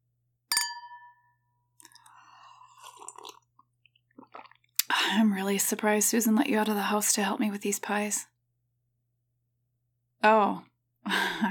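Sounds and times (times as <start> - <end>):
glasses clinking in a toast: 0.5 - 2.0
speech: 5.1 - 8.3, 10.2 - 10.7.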